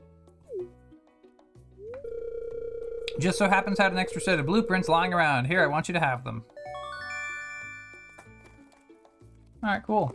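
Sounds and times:
phone beeps while setting do not disturb: 2.0 - 5.2
rising electronic phone chirps: 2.1 - 5.3
speech: 3.2 - 6.6, 9.6 - 10.1.

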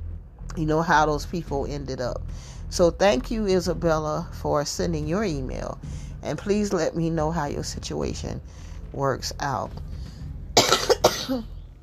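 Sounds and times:
speech: 0.6 - 10.1, 11.3 - 11.6
loud harsh cough: 10.6 - 11.5.

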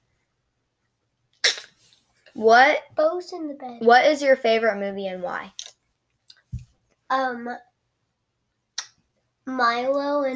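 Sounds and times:
sneeze: 1.4 - 1.8
speech: 2.4 - 5.6, 7.1 - 7.7, 9.5 - 10.3.

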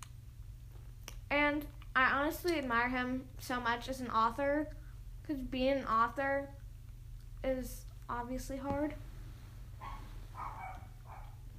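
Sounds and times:
low hum: 0.0 - 11.5
speech: 1.4 - 6.6, 7.4 - 9.1
dog barking: 9.8 - 11.5.

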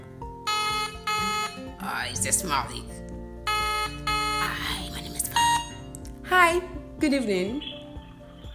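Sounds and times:
outgoing phone call ringing tone: 0.5 - 1.7, 3.5 - 4.8
speech: 1.9 - 3.0, 6.3 - 7.7.

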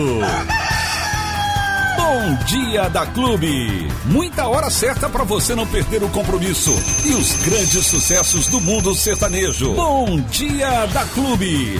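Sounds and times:
rooster crowing: 0.2 - 2.0
speech: 2.1 - 11.7.

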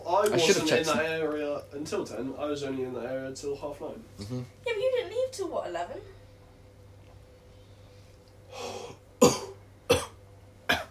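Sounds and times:
speech: 0.2 - 6.2
person coughing: 9.2 - 10.8.

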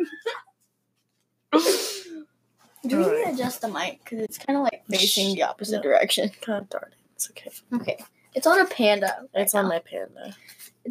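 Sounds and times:
voice imitating a sneeze: 1.6 - 2.2
speech: 2.9 - 10.8.

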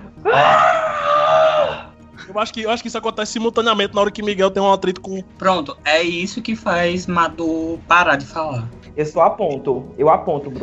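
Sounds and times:
desperate wailing scream performed by a voice: 0.2 - 1.9
speech: 0.3 - 0.6, 2.4 - 10.6.

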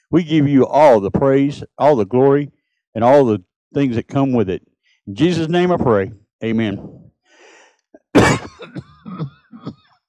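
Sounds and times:
speech: 0.1 - 7.0, 8.1 - 9.8
throat sounds: 6.6 - 7.1, 8.0 - 9.8
person coughing harshly: 8.2 - 9.9.

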